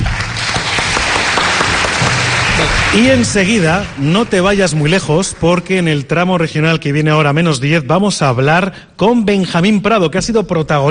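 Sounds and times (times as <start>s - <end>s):
applause for two guests on a radio program: 0.0s - 6.0s
speech: 2.9s - 10.8s.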